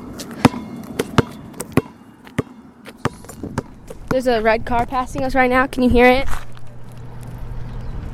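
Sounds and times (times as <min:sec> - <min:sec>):
basketball bouncing as people play: 0:00.2 - 0:05.4
speech: 0:04.1 - 0:06.4.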